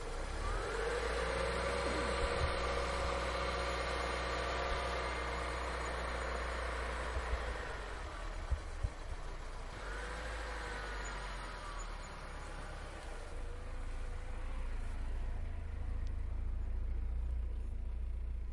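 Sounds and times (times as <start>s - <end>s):
Niva vehicle sounds: 0.1s - 18.4s.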